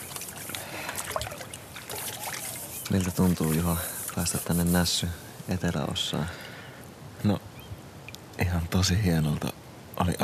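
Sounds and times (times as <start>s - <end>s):
water sloshing and trickling in a basin outdoors: 0.0s - 5.0s
speech: 2.9s - 6.4s, 7.2s - 7.5s, 8.4s - 10.2s.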